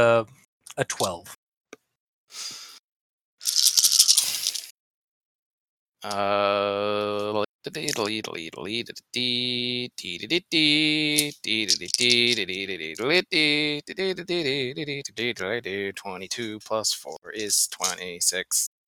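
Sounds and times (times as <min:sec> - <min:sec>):
speech: 0:00.0 - 0:01.4, 0:02.3 - 0:02.6, 0:06.0 - 0:18.7
ten dice rolled for a tabletop role-playing game: 0:03.4 - 0:04.7, 0:11.2 - 0:12.4.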